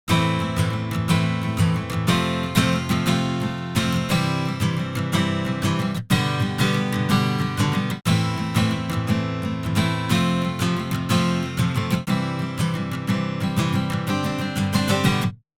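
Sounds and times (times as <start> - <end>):
guitar strumming: 0.1 - 15.4.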